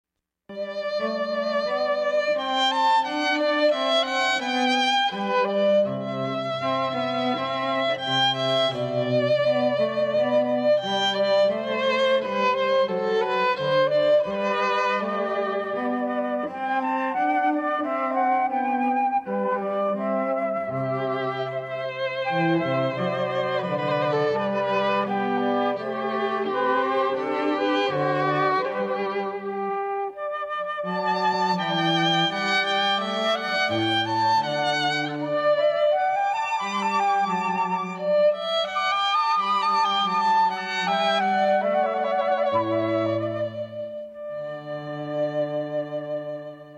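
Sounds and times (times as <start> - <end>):
flute trio: 0.5 - 46.7.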